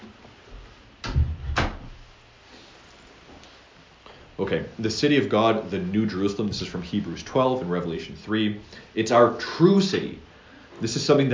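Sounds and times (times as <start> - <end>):
door pushed shut: 1.0 - 2.0
speech: 4.4 - 11.3.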